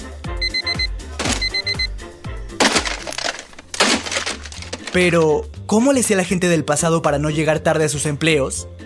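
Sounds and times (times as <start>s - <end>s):
electronic alarm clock beeping in high tones: 0.4s - 2.0s
speech: 5.0s - 8.8s.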